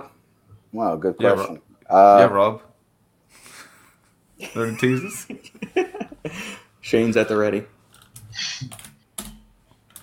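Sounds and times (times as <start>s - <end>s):
speech: 0.7s - 2.7s, 4.4s - 7.8s, 8.4s - 8.8s
laughter: 4.4s - 6.6s
typing on a computer keyboard: 7.9s - 10.0s.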